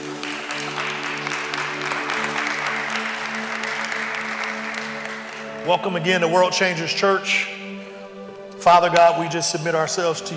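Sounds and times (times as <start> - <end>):
large congregation applauding: 0.0 - 6.3
speech: 5.7 - 7.6, 8.6 - 10.3.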